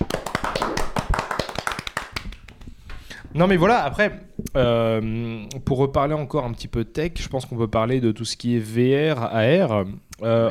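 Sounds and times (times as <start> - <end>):
hands clapping in applause for a moderator: 0.0 - 2.8
speech: 3.4 - 10.4.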